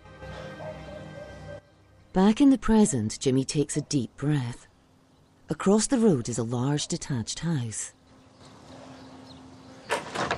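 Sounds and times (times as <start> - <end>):
speech: 2.1 - 4.7, 5.5 - 8.0
house front door opening: 9.8 - 10.3.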